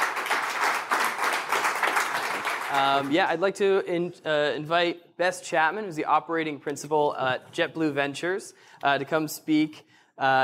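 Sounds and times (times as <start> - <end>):
audience applauding: 0.0 - 3.2
speech: 2.7 - 10.4.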